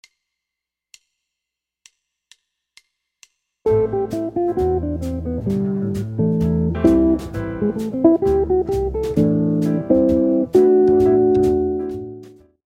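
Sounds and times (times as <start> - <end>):
guitar playing quartal chords: 3.7 - 12.4.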